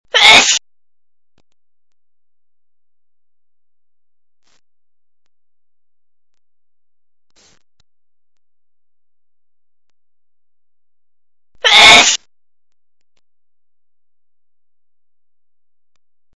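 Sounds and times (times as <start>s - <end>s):
woman sneezing: 0.2s - 0.6s, 11.7s - 12.2s.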